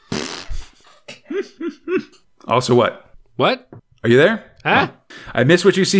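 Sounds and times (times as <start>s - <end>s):
raspberry blown with the lips imitating a fart: 0.0s - 0.8s
speech: 1.3s - 5.9s.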